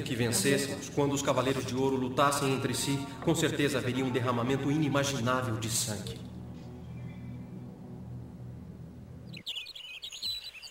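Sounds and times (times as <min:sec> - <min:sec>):
speech: 0:00.0 - 0:06.4
low steady hum: 0:00.0 - 0:09.8
bird chirping and trilling: 0:06.5 - 0:07.8, 0:09.2 - 0:10.7.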